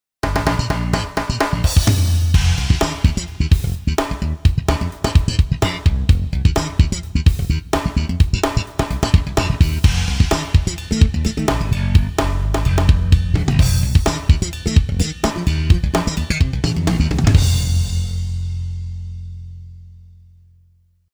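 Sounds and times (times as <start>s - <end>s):
drums on a Roland XP-80: 0.2s - 20.2s
bass on a Roland XP-80: 0.2s - 21.1s.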